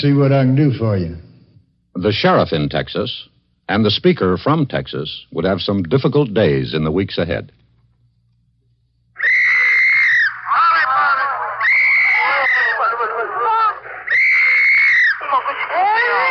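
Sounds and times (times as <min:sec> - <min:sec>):
speech: 0:00.0 - 0:01.2, 0:02.0 - 0:07.6
infants sobbing: 0:09.2 - 0:16.2.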